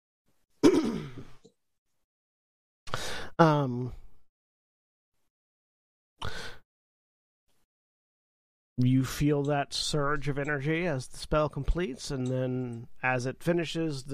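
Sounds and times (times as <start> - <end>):
person coughing in the background: 0.6 - 1.4
speech: 3.4 - 4.0, 8.8 - 14.1.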